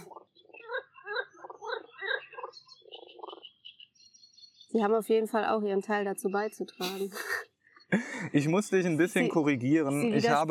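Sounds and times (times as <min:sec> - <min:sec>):
higher chirping calls: 0:00.0 - 0:07.9
dense chorus of frogs croaking: 0:00.0 - 0:08.0
speech: 0:04.7 - 0:10.5.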